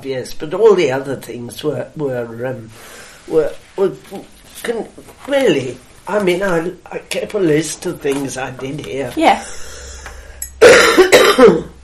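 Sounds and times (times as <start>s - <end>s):
speech: 0.0s - 9.7s, 11.0s - 11.7s
person with asthma coughing: 10.6s - 11.8s.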